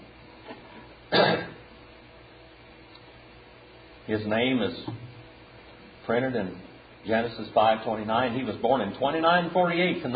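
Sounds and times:
person clearing throat: 1.1 - 1.7
speech: 4.1 - 5.1, 6.1 - 10.1.

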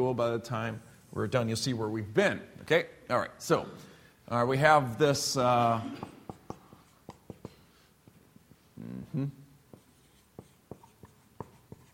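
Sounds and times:
speech: 0.0 - 6.2, 9.1 - 9.4
writing on a board during a talk: 6.0 - 7.7, 9.7 - 11.9.

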